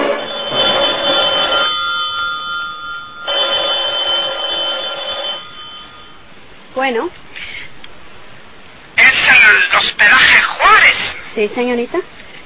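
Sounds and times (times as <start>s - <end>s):
telephone ringing in long steady bursts: 0.2s - 6.3s
speech: 6.9s - 7.2s, 9.5s - 12.1s.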